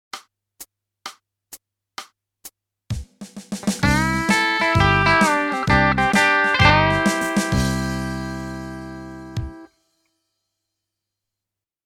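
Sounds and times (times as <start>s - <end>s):
country music: 3.6s - 9.7s.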